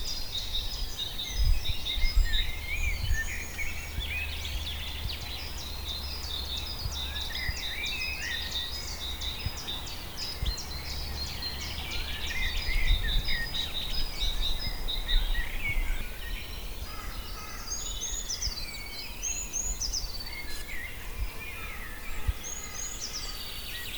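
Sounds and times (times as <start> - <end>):
birds twittering chorus in Auquainville, France: 0.0 - 23.9.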